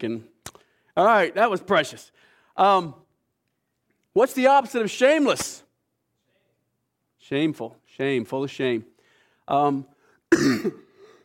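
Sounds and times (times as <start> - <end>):
speech: 0.0 - 0.3, 1.0 - 3.0, 4.2 - 5.6, 7.2 - 8.9, 9.5 - 10.8
person clearing throat: 10.3 - 11.1
person coughing: 10.3 - 11.2.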